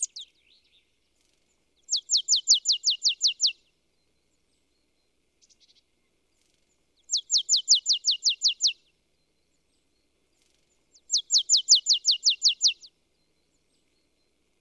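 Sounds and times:
marsh tit Poecile palustris calling: 0.0 - 0.3, 1.9 - 3.5, 7.1 - 8.8, 11.0 - 12.9.

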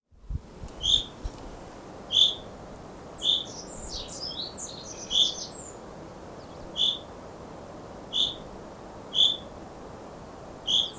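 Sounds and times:
Fringilla coelebs common chaffinch calling: 0.8 - 1.1, 2.1 - 2.5, 3.2 - 5.8, 6.4 - 7.1, 8.1 - 8.5, 9.1 - 9.5, 10.6 - 10.9.

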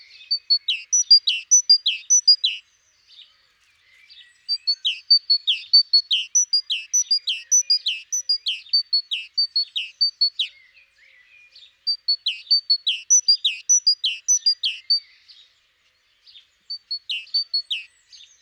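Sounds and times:
great tit Parus major calls: 0.0 - 2.6, 4.5 - 10.6, 11.9 - 15.1, 16.7 - 18.4.

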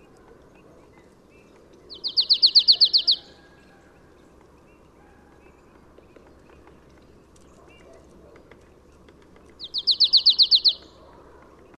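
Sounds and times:
low background noise: 0.0 - 11.7
marsh tit Poecile palustris trilling: 1.9 - 3.6, 9.6 - 11.1.

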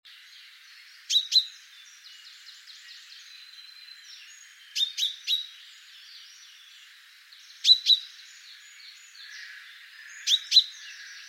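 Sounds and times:
other birds twittering faintly: 0.1 - 11.2
common chaffinch calling with clipped emphatic notes: 1.0 - 3.3, 4.2 - 5.6, 7.6 - 8.5, 9.1 - 11.2.

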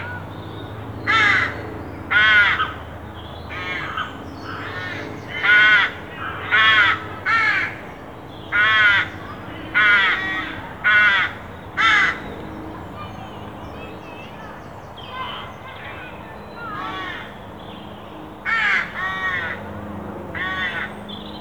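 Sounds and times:
carrion crow Corvus corone cawing: 1.1 - 2.8, 3.5 - 7.8, 8.5 - 12.3, 16.6 - 17.4, 18.4 - 19.7, 20.3 - 21.0.

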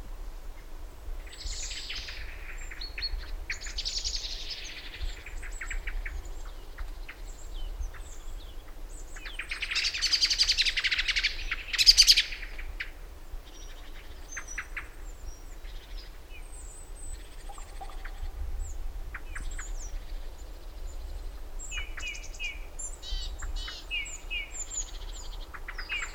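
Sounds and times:
common blackbird Turdus merula calls: 1.3 - 26.1.

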